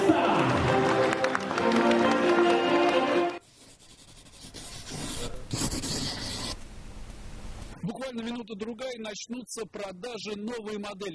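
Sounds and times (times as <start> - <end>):
audience applauding: 0.0 - 3.4
speech: 8.4 - 11.1.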